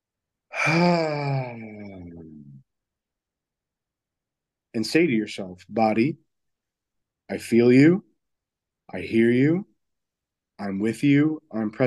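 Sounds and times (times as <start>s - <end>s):
deep voiced sighing exhale during a relaxation breathing exercise: 0.5s - 1.9s
speech: 0.7s - 1.7s, 4.8s - 6.2s, 7.3s - 8.1s, 8.9s - 9.7s, 10.6s - 11.8s.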